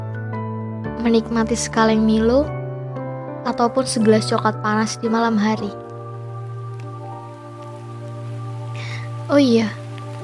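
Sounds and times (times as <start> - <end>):
speech: 1.0 - 2.6, 3.4 - 5.8, 9.3 - 9.8
rain falling: 3.8 - 10.2.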